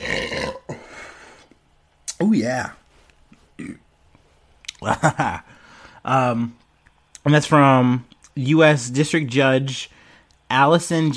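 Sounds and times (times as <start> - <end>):
loud drawn-out guttural burp: 0.0 - 0.9
speech: 2.2 - 2.8, 3.6 - 3.8, 4.8 - 6.6, 7.2 - 11.1.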